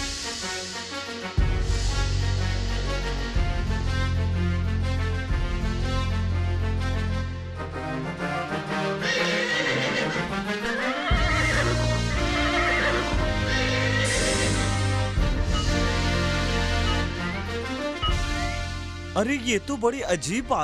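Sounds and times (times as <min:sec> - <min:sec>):
dramatic music with deep bass notes: 0:00.0 - 0:09.0, 0:10.1 - 0:20.6
horse neighing and whinnying: 0:09.0 - 0:14.9
speech: 0:19.2 - 0:20.6.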